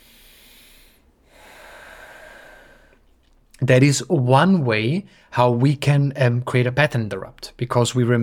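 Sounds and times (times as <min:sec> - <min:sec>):
slow deep breath in upright posture: 0:00.0 - 0:03.4, 0:05.1 - 0:05.4
speech: 0:03.6 - 0:08.2.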